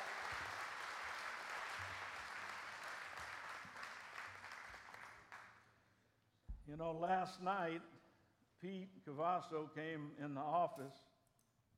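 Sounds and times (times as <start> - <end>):
audience applause: 0.0 - 5.5
speech: 6.7 - 8.0, 8.6 - 11.1.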